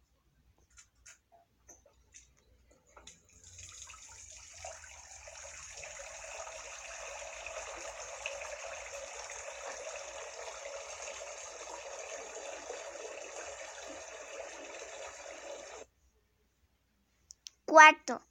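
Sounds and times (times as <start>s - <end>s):
tap water running while washing hands: 3.0s - 15.9s
speech: 17.8s - 18.3s.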